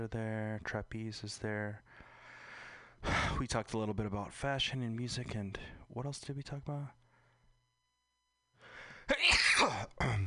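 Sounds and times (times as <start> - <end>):
speech: 0.0 - 2.1, 3.0 - 7.0, 9.2 - 10.2
loud sneeze: 9.1 - 10.2.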